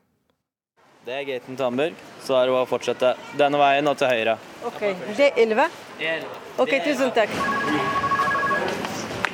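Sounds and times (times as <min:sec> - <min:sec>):
speech: 0:01.0 - 0:07.9
telephone ringing with an electronic two-tone trill: 0:07.3 - 0:08.8.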